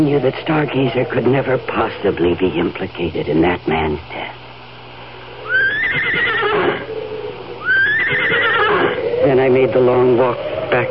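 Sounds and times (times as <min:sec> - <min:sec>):
speech: 0:00.0 - 0:04.4, 0:09.3 - 0:10.8
horse whinnying shrill quavering neighs: 0:05.4 - 0:09.4.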